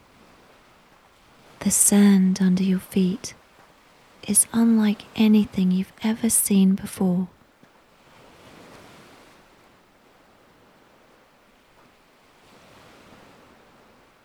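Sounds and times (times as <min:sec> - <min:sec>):
ocean waves crashing onto the shore: 0:01.3 - 0:03.4, 0:04.0 - 0:07.3
speech: 0:01.6 - 0:03.4, 0:04.2 - 0:07.4.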